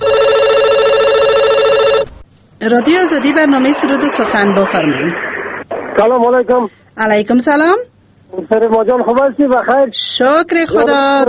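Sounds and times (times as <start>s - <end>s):
telephone ringing for an incoming call: 0.0s - 2.1s
speech: 2.6s - 5.3s, 6.0s - 11.2s.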